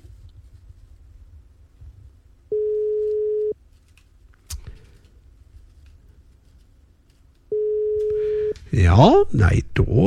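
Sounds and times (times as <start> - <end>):
telephone ringback tone from an outgoing call: 2.5 - 3.6, 7.5 - 8.6
speech: 8.7 - 10.0.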